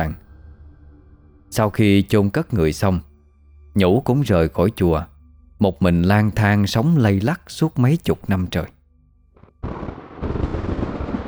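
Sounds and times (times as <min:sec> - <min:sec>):
speech: 0:00.0 - 0:00.2, 0:01.5 - 0:03.1, 0:03.8 - 0:08.8, 0:09.6 - 0:10.0
thunder clap: 0:09.6 - 0:11.2.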